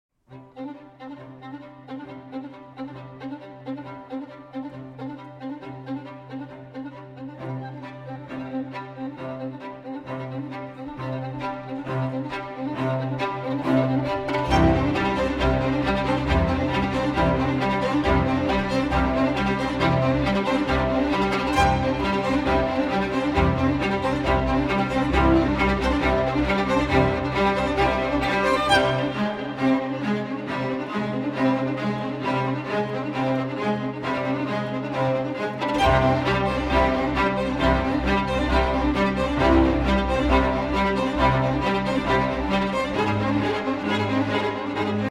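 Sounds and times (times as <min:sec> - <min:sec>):
solo violin: 0:00.3 - 0:45.0
strings: 0:00.3 - 0:45.0
piano: 0:01.9 - 0:45.0.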